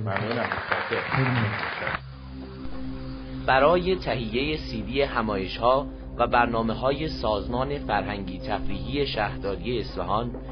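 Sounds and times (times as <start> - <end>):
audience clapping: 0.0 - 2.1
speech: 0.0 - 2.1, 3.4 - 10.5
steady tonal hum: 2.0 - 10.5.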